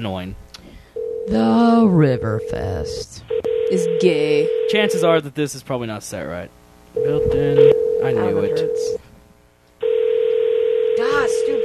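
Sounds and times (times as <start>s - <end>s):
speech: 0.0s - 0.4s, 1.3s - 9.0s
telephone ring tone on an outgoing call: 1.0s - 1.6s, 2.2s - 5.2s, 7.0s - 9.0s, 9.8s - 11.6s.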